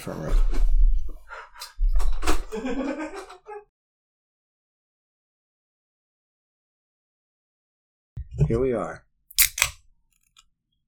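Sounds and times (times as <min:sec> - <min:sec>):
speech: 0:00.0 - 0:00.8, 0:02.5 - 0:03.4, 0:08.4 - 0:09.0
laughter: 0:02.5 - 0:03.7
soda can cracking open with a metallic snap and hissing fizz: 0:09.3 - 0:10.4.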